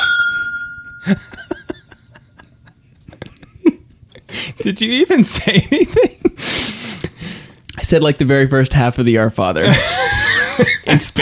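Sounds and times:
glasses clinking in a toast: 0.0 - 1.9
glass ringing with a clear sustained tone: 0.0 - 2.0
speech: 1.0 - 1.5, 4.6 - 6.7, 7.9 - 11.2
laughter: 1.0 - 3.8, 9.6 - 11.2.

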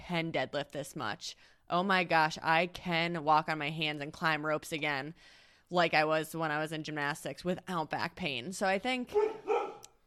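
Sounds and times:
speech: 0.1 - 9.4
dog barking: 9.1 - 9.9.

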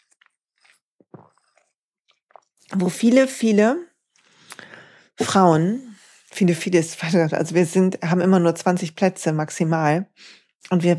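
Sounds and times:
slurping mouth sounds from sipping a smoothie: 0.0 - 2.9
speech: 2.7 - 3.9, 5.3 - 10.9.

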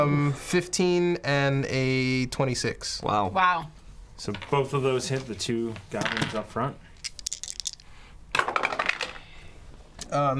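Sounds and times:
speech: 0.0 - 7.2, 10.1 - 10.3
dice rolling on a hard table: 6.0 - 6.4, 7.0 - 9.3.

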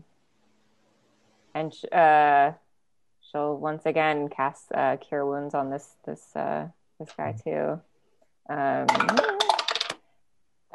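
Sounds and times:
speech: 1.6 - 2.6, 3.3 - 7.9, 8.5 - 9.3
plastic dice rattling down a dice tower: 8.9 - 10.0.

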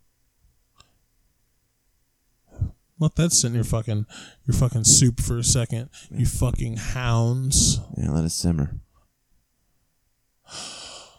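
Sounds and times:
speech: 3.0 - 8.9, 10.5 - 10.7
sharp breathy gasp: 10.5 - 11.1.

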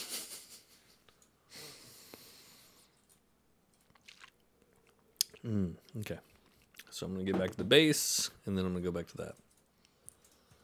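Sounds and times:
wet mouth clicks: 3.8 - 5.5
person chewing chocolate: 3.8 - 6.9
speech: 5.4 - 6.3, 7.0 - 9.4.

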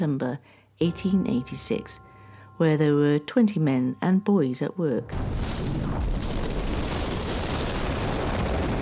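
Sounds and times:
speech: 0.0 - 6.2
crackling debris: 5.1 - 8.7
deep rumbling roar of underground explosion in a coal mine pit: 5.1 - 8.7.

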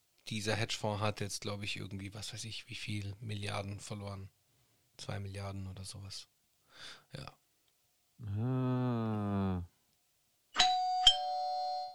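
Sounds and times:
speech: 0.3 - 4.4, 5.0 - 7.4, 8.2 - 9.7
doorbell chiming: 10.6 - 11.9.

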